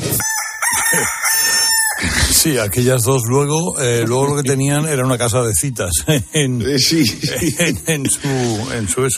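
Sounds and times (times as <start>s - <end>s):
rooster crowing: 0.2s - 2.4s
laughter: 0.7s - 2.8s, 5.9s - 9.1s
speech: 2.4s - 9.1s.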